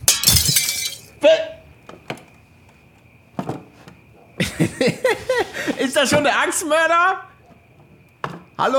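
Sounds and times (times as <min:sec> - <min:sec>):
scattered sharp clinks and knocks of breaking glass: 0:00.0 - 0:01.1
window glass being smashed in: 0:00.0 - 0:01.2
laughter: 0:04.4 - 0:06.0
speech: 0:06.0 - 0:07.3, 0:08.6 - 0:08.7.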